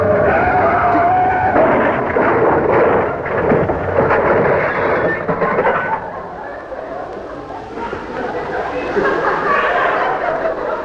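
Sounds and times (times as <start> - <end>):
car braking hard and skidding: 0.0 - 10.8
laughter: 0.0 - 10.8.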